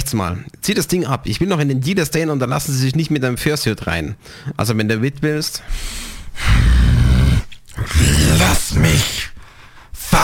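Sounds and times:
speech: 0.1 - 7.0, 7.8 - 9.3, 10.0 - 10.2
animal-like growling: 6.4 - 8.5.

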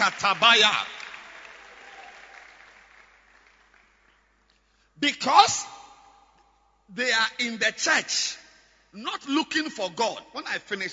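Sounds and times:
speech: 0.0 - 1.0, 5.0 - 5.8, 6.9 - 10.9
church congregation clapping: 0.0 - 4.7.

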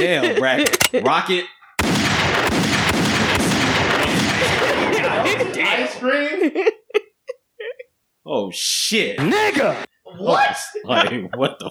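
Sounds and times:
laughter: 0.0 - 0.6, 4.1 - 7.9, 9.8 - 11.6
speech: 0.0 - 1.6, 5.2 - 6.8, 8.3 - 11.6
sharp gunshots: 1.8 - 4.6.

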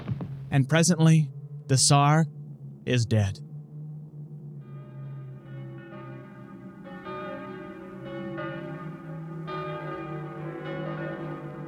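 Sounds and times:
speech: 0.6 - 3.5
heavy bells tolling: 4.8 - 11.6.

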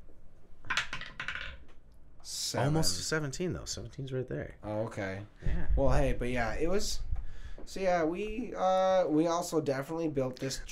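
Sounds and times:
die tumbling through a homemade dice tower: 0.7 - 1.7
speech: 2.3 - 7.1, 7.7 - 10.7.

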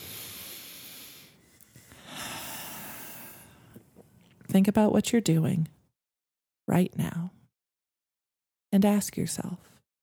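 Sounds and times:
deep breath with long inhale and exhale: 0.0 - 3.8
speech: 4.5 - 5.8, 6.7 - 7.4, 8.7 - 9.7.

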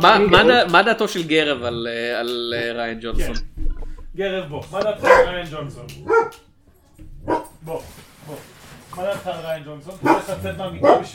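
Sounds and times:
speech: 0.0 - 3.5, 4.2 - 6.4, 7.3 - 11.1
dog barking: 5.0 - 5.4, 6.0 - 6.5, 7.2 - 7.6, 10.0 - 11.1
dog giving higher whining yelps: 6.0 - 6.4.

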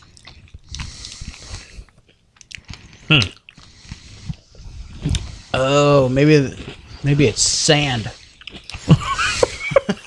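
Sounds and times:
chewing crunchy hard nuts: 0.0 - 5.3, 8.2 - 9.0
speech: 3.1 - 3.4, 5.6 - 8.2
laughter: 8.8 - 10.0.

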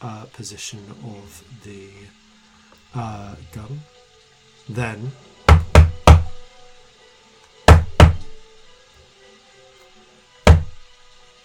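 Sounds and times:
speech: 0.0 - 2.2, 2.9 - 4.0, 4.7 - 5.6
knocking on a door: 5.5 - 6.4, 7.7 - 8.3, 10.4 - 10.8.

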